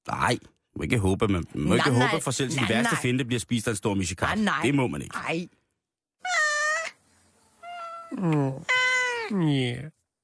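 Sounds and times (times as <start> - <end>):
speech: 0.0 - 5.6, 8.1 - 10.0
cat meowing: 6.2 - 7.0, 7.6 - 9.4.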